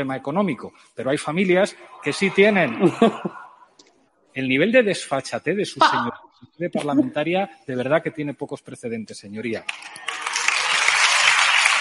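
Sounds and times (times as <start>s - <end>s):
speech: 0.0s - 3.4s, 4.4s - 10.2s
laughter: 2.2s - 3.5s
audience applauding in parliament: 9.6s - 11.7s.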